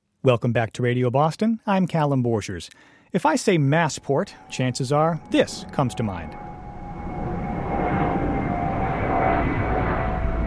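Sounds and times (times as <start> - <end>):
speech: 0.2 - 6.5
faint sustained airplane whine: 3.4 - 10.4
airplane flying near Boston's Logan Airport: 3.5 - 10.4.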